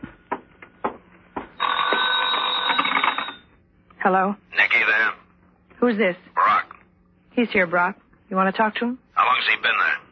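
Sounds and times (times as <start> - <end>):
telephone bell ringing: 1.6 - 3.6
speech: 4.0 - 5.2, 5.8 - 6.5, 7.4 - 10.0.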